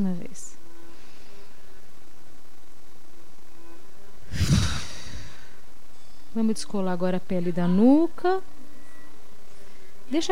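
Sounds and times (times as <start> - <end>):
speech: 0.0 - 0.6, 6.4 - 8.6, 10.1 - 10.3
deep breath with exhale whoosh: 4.3 - 5.6.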